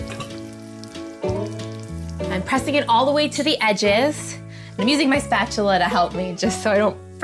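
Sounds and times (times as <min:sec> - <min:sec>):
pizza dough sizzling in hot olive oil in a pan: 0:00.0 - 0:04.2
speech: 0:02.4 - 0:07.2.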